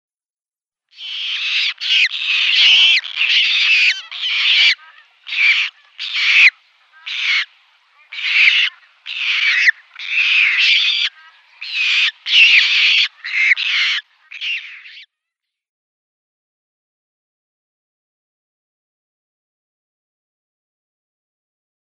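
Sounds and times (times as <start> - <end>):
Squacco Heron nestlings calling: 1.0 - 15.0.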